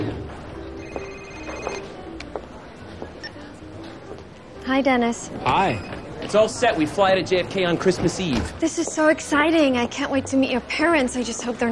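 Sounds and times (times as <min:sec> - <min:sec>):
busy murmuring background: 0:00.0 - 0:11.6
telephone ringing with electronic tones: 0:00.6 - 0:02.0
speech: 0:04.7 - 0:11.6.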